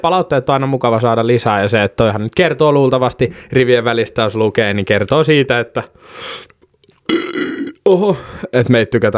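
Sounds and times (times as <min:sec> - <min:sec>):
speech: 0:00.0 - 0:06.5, 0:07.1 - 0:09.1
loud raspy belches: 0:07.0 - 0:08.2.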